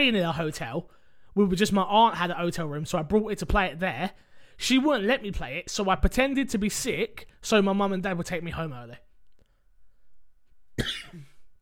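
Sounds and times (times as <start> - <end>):
speech: 0.0 - 9.1, 10.8 - 11.3
single sharp cough with rasping tail: 10.8 - 11.6.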